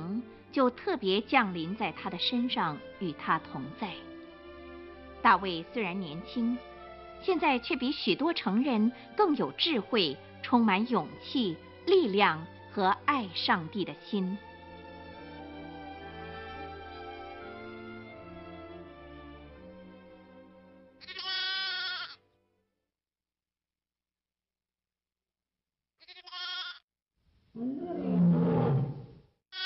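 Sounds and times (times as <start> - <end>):
speech: 0.5 - 4.1, 5.2 - 14.5
lamb bleating: 21.0 - 22.2, 26.0 - 26.8
lion roaring: 27.6 - 29.2.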